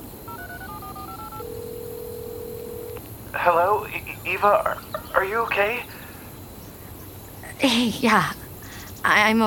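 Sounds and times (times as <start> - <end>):
faint hiss: 0.0 - 9.4
dual-tone phone dialing beeps: 0.3 - 4.4
speech: 3.3 - 6.0, 7.6 - 8.4, 9.0 - 9.4.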